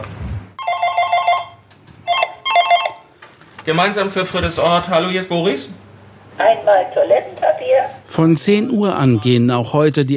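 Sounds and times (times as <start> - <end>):
telephone ringing on a delivery order line: 0.6 - 3.1
speech: 3.7 - 5.8, 6.4 - 10.1.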